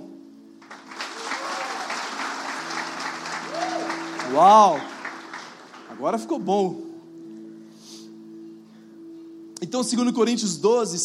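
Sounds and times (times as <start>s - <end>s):
indoor audience applause in a church service: 0.6s - 6.0s
speech: 4.3s - 4.9s, 6.0s - 6.9s, 9.7s - 11.0s.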